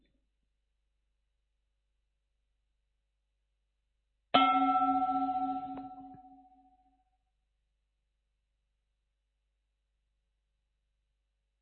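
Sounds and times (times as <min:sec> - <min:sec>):
meditation bell struck in a guided mindfulness practice: 0:04.4 - 0:06.8.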